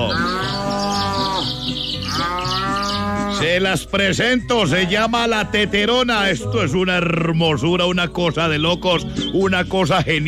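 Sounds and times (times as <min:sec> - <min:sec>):
cow mooing: 0:00.0 - 0:03.6
speech: 0:03.4 - 0:10.2.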